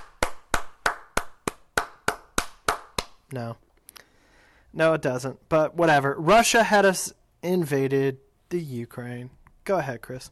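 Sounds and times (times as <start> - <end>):
sharp hand claps: 0.0 - 3.3
speech: 3.3 - 3.7, 4.7 - 10.3.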